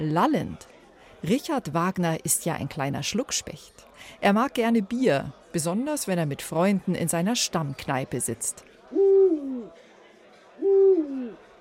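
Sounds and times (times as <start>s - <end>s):
speech: 0.0s - 9.8s
owl hooting: 9.0s - 9.7s, 10.6s - 11.4s.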